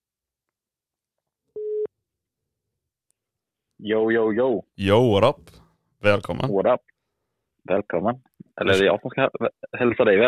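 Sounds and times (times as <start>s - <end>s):
telephone ringing signal of an outgoing call: 1.6s - 1.9s
speech: 3.8s - 6.9s, 7.6s - 10.2s.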